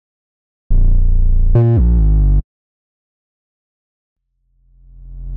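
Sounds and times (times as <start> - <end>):
drill bass loop in F minor at 142 BPM: 0.8 - 2.4.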